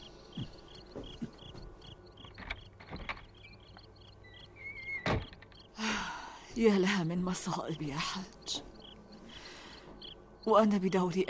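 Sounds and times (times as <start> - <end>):
crickets chirping: 0.0 - 11.2
house door being pushed shut and locked: 2.2 - 3.8, 4.8 - 5.7
speech: 6.6 - 8.7, 10.4 - 11.2.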